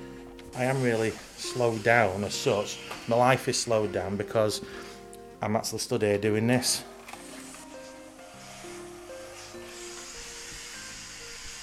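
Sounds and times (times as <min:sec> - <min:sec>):
soft sustained musical tones: 0:00.0 - 0:11.6
steam hissing from pressing clothes: 0:00.5 - 0:04.0, 0:07.2 - 0:11.6
speech: 0:00.6 - 0:06.9.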